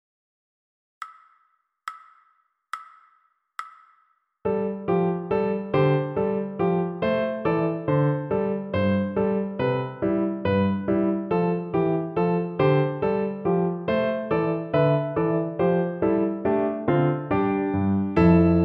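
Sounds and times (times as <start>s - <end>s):
piano piece played poco animato: 4.5s - 18.6s.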